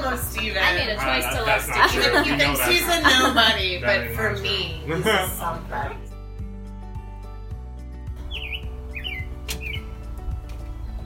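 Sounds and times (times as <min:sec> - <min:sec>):
speech: 0:00.1 - 0:06.1
laughter: 0:00.4 - 0:04.0
high bird chirping: 0:08.2 - 0:10.1.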